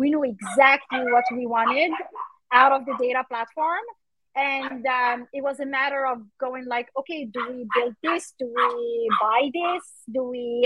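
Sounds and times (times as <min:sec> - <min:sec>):
speech: 0:00.2 - 0:10.6
dog barking in short excited bursts: 0:00.4 - 0:03.1, 0:07.4 - 0:09.8.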